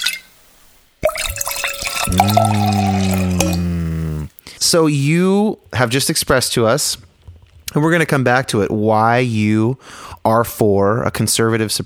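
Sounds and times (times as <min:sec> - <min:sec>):
beer pouring into a glass: 0:01.0 - 0:03.6
speech: 0:02.1 - 0:03.2, 0:04.6 - 0:07.1, 0:07.7 - 0:11.8.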